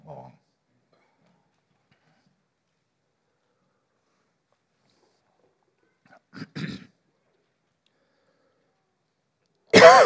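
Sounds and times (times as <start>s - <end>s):
coughs: 6.0s - 7.0s, 9.7s - 10.0s.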